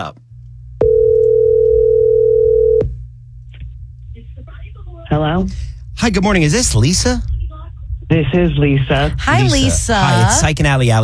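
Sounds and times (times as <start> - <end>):
speech: 0.0 - 0.2, 5.1 - 7.3, 8.1 - 11.0
low rumble: 0.0 - 11.0
telephone dial tone while dialing out: 0.8 - 2.8.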